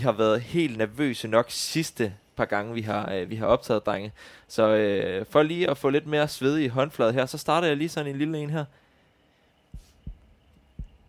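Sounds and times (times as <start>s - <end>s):
speech: 0.0s - 8.8s
faint hum: 0.0s - 11.0s
heartbeat sound effect thumping: 9.7s - 11.0s.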